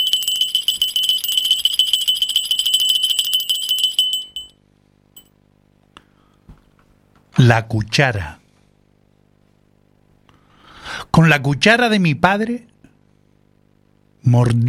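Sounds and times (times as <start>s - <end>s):
small bell ringing: 0.0s - 4.6s
speech: 7.5s - 8.4s, 11.2s - 12.7s, 14.2s - 14.6s.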